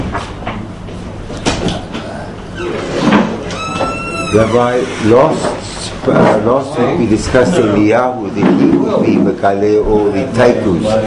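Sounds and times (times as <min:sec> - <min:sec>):
door opening with rattle: 0:02.5 - 0:05.5
speech: 0:04.3 - 0:11.0.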